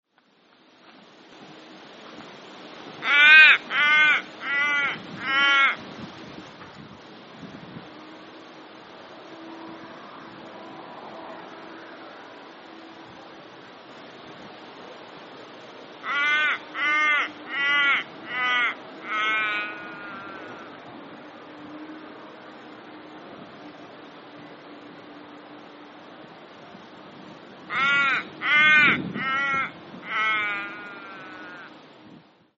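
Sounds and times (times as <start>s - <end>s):
little raven dying: 3.0s - 5.8s, 16.0s - 20.7s, 27.7s - 31.8s.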